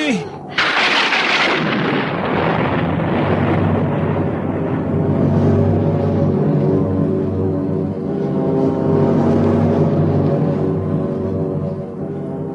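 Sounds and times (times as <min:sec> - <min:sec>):
storm wind roaring at sea: 0:00.0 - 0:11.7
speech: 0:00.1 - 0:00.3
sudden thunderous crash: 0:00.5 - 0:05.6.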